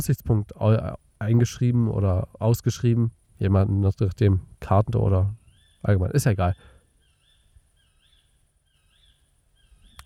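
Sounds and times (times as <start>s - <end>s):
speech: 0.0s - 6.7s
bird rising-and-falling whistled call: 6.5s - 10.0s.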